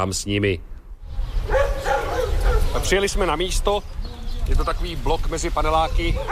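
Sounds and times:
speech: 0.0 - 0.7, 2.8 - 6.3
stray dogs barking and yipping: 1.3 - 3.3, 5.7 - 6.3.

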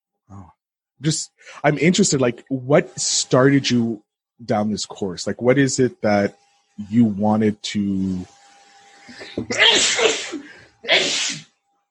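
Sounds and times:
speech: 1.0 - 8.4, 9.1 - 10.1
person sneezing: 9.3 - 11.5.

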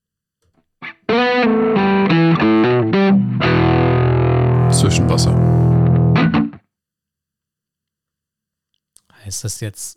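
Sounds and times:
twangy electric guitar lick in a rock-and-roll Christmas song: 0.8 - 6.6
speech: 4.8 - 5.7, 9.3 - 9.9.

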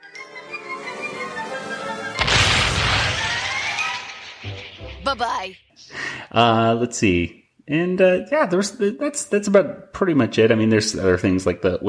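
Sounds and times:
brassy musical passage: 0.0 - 2.3
cannon blasts: 2.2 - 5.6
speech: 5.1 - 11.8.

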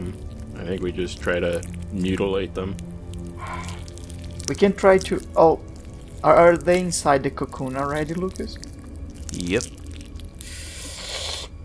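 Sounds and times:
dense gritty crunching and grinding: 0.0 - 10.8
speech: 0.7 - 3.9, 4.5 - 8.7, 9.3 - 9.8.

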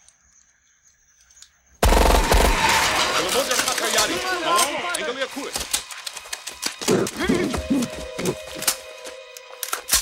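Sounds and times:
automatic gunfire bursts from sensor-operated machine pistols on tripods: 1.8 - 3.1
speech: 3.4 - 5.8, 6.9 - 8.5.

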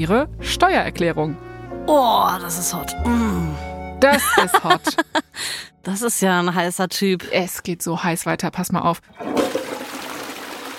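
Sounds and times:
speech: 0.0 - 9.5
laughter: 4.1 - 5.4
toilet flushing: 9.1 - 10.7.

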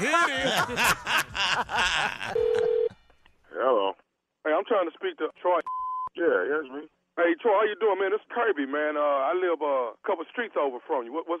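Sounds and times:
speech: 0.0 - 2.6, 4.7 - 11.3
laughter: 0.0 - 2.9
telephone dialing tones placing a prank phone call: 2.4 - 2.9
steady unbroken telephone line tone: 2.4 - 3.0.

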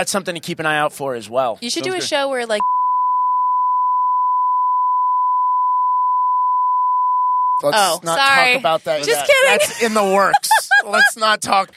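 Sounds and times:
speech: 0.0 - 2.8, 7.6 - 11.7
steady pure electronic censor bleep tone: 2.6 - 7.7
laughter: 8.5 - 11.5.

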